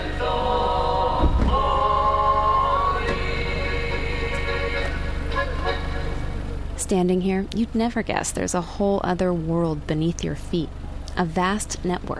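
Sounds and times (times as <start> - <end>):
loud tuneful folk music blasting from a stereo: 0.0 - 6.6
idling car engines near a town square on a sunny day: 0.0 - 12.1
speech: 6.9 - 12.1.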